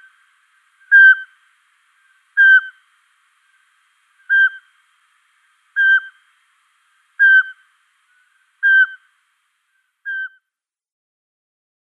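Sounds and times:
male Eurasian pygmy owl whistling piping notes in display: 0.9 - 1.4, 2.4 - 2.8, 4.2 - 4.7, 5.8 - 6.2, 7.2 - 7.6, 8.6 - 9.1, 10.0 - 10.5.

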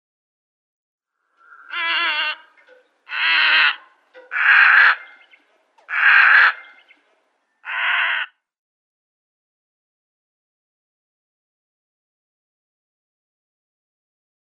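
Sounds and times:
Black-headed Heron flight call: 1.4 - 7.0.

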